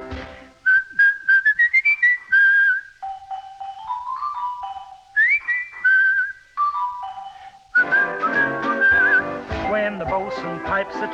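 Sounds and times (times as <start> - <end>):
fuller music: 0.0 - 0.7, 3.0 - 5.9, 6.6 - 11.1
bosun's pipe whistling a lively tune: 0.5 - 10.6.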